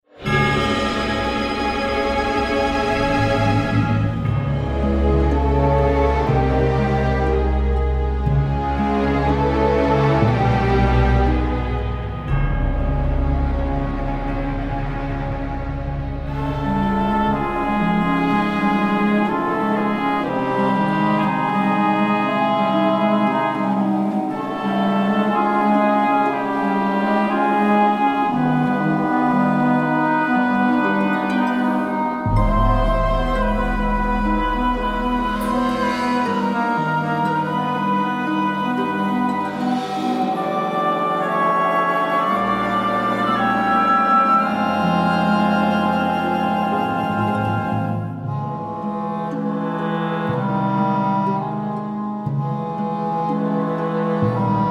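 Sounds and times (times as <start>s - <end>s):
music: 0.0s - 54.6s.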